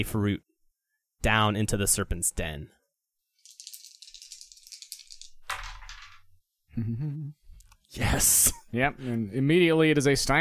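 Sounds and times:
speech: 0.0 - 0.5, 1.2 - 2.8, 6.8 - 10.4
dice rattling in a cupped hand: 3.4 - 6.3.

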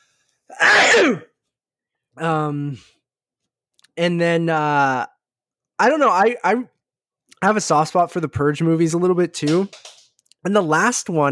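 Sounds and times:
speech: 0.5 - 1.3, 2.2 - 3.0, 4.0 - 5.1, 5.8 - 6.7, 7.4 - 11.3
loud sneeze: 0.5 - 1.4.

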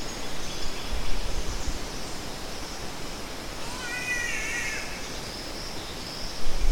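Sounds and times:
steady forest hiss: 0.0 - 6.7
wavering cat-like green catbird call: 3.6 - 5.0.

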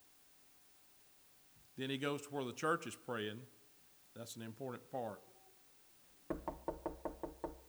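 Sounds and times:
speech: 1.8 - 3.6, 4.2 - 5.3
knocking on a wooden door: 6.3 - 7.6.

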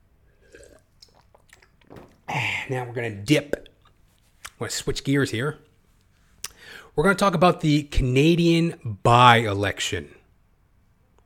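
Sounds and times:
sipping water: 0.3 - 4.6
person swallowing: 0.4 - 2.7
wet mouth clicks: 0.5 - 1.9, 6.4 - 6.6
speech: 2.7 - 3.6, 4.6 - 5.7, 6.7 - 10.2.

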